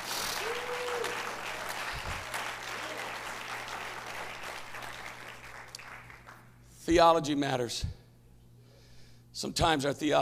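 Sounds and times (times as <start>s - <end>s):
large crowd applauding: 0.0s - 6.6s
speech: 6.9s - 8.0s, 9.4s - 10.2s.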